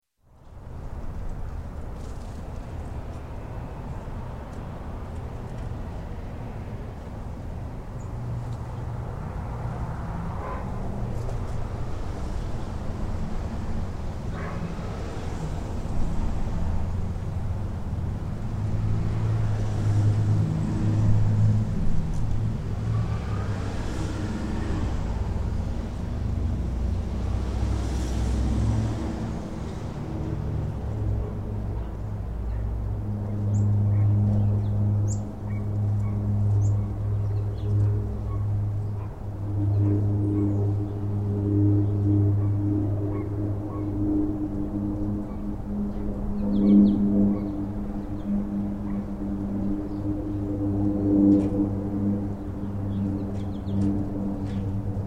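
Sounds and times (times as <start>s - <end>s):
traffic: 0.2s - 55.0s
residential birds: 31.7s - 55.0s.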